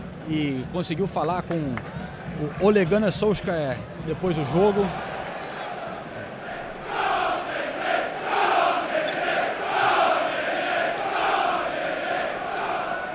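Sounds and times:
speech: 0.3s - 5.1s
large crowd of football supporters chanting in unison in a packed stadium: 5.6s - 13.1s.

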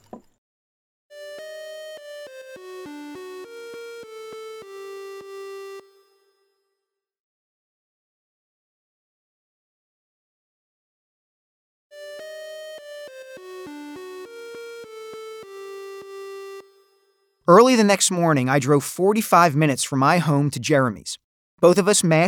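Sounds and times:
outgoing phone call ringing with electronic melodic bursts: 1.1s - 6.3s, 12.0s - 18.0s
speech: 17.5s - 22.2s.

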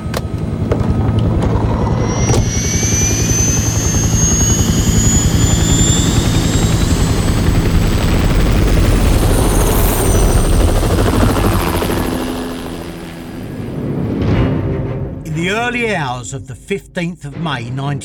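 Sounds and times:
Sea King helicopter turbine whine: 0.0s - 14.3s
Sea King helicopter rotors thudding while lifting off: 0.0s - 15.8s
speech: 15.7s - 18.0s.

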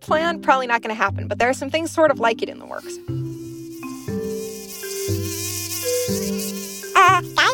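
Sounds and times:
speech: 0.0s - 3.2s
mosquito buzzing: 2.6s - 7.5s.

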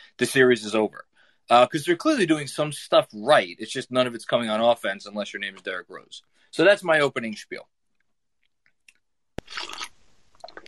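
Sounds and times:
speech: 0.2s - 7.8s
person sipping coffee with a slurping rush: 9.4s - 10.6s
small mouth sounds: 9.4s - 10.6s.

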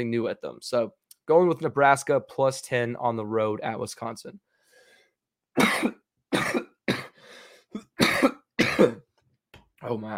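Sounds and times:
speech: 0.0s - 4.5s, 5.6s - 6.6s, 9.8s - 10.1s
short raspy breath: 4.6s - 5.2s, 7.2s - 7.8s
harsh hacking coughing fit: 5.6s - 9.1s.

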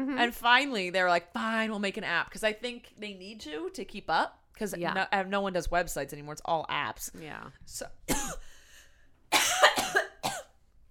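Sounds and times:
speech: 0.2s - 8.5s
coughing fit: 8.1s - 8.5s, 9.3s - 10.6s.

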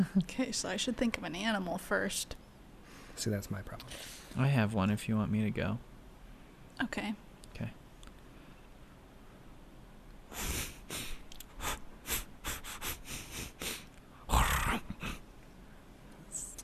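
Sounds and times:
speech: 0.0s - 2.4s, 3.2s - 5.9s, 6.8s - 7.8s
person imitating a wild boar snorting: 10.3s - 15.2s.

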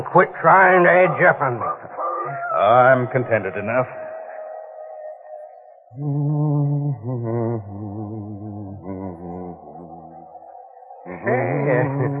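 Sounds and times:
speech: 0.0s - 1.9s, 2.6s - 4.0s, 5.9s - 7.8s
laughter: 0.0s - 4.5s, 11.1s - 12.1s
person humming a slow tune: 2.2s - 3.8s, 6.0s - 10.1s, 11.1s - 12.1s.

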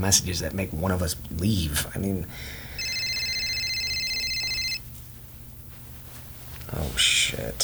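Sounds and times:
speech: 0.0s - 2.7s, 6.8s - 7.6s
telephone ringing with trilling electronic tones: 2.8s - 4.9s.

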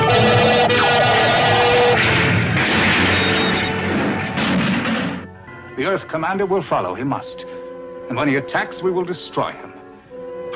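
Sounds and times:
tonal whines: 0.0s - 4.4s
starship phasers firing point blank under heavy attack: 0.0s - 5.3s
speech: 6.0s - 7.5s, 8.1s - 9.8s.

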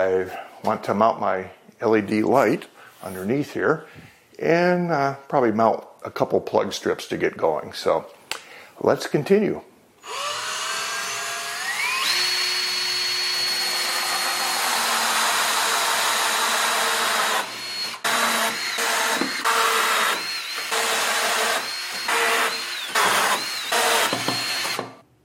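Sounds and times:
speech: 0.0s - 8.2s, 8.8s - 10.4s
power drill drilling holes in the back of a workbench: 10.0s - 25.0s.

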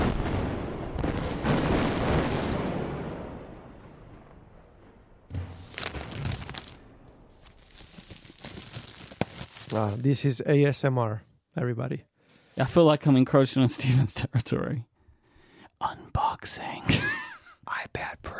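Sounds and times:
explosion booming: 0.0s - 7.4s
blast with crackling debris: 0.0s - 8.8s
speech: 9.8s - 14.9s, 15.8s - 17.1s.

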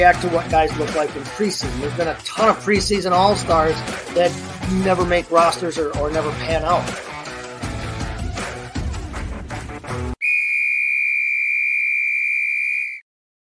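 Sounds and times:
speech: 0.0s - 7.1s
busy music: 0.0s - 10.2s
long shrill whistle blast: 10.2s - 13.0s.

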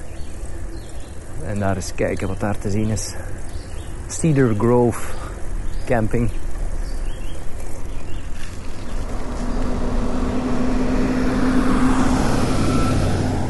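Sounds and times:
speech: 1.5s - 3.5s, 4.1s - 5.2s, 5.9s - 6.4s
large North American motorhome driving past on a road by a campground: 8.4s - 13.4s.

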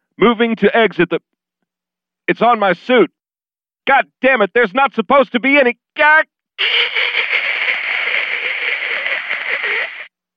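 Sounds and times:
speech: 0.2s - 1.4s, 2.3s - 3.2s, 3.8s - 7.0s
harsh static white noise from a screen: 6.6s - 10.1s.

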